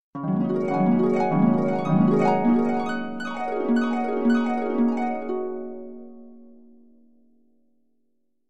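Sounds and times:
dreamy harp sequence: 0:00.2 - 0:06.2.

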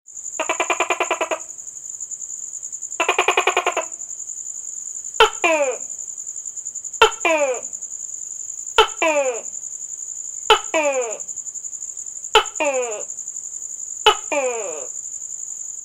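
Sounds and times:
lizard: 0:00.4 - 0:01.5, 0:03.0 - 0:04.0, 0:05.2 - 0:06.0, 0:07.0 - 0:07.8, 0:08.8 - 0:09.6, 0:10.5 - 0:11.3, 0:12.3 - 0:13.1, 0:14.0 - 0:15.0.

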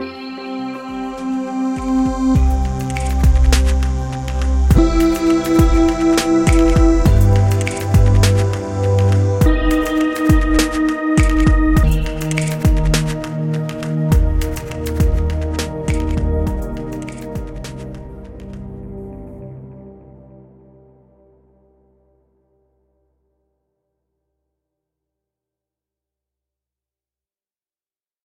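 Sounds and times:
sweet synth pads: 0:00.0 - 0:22.2.

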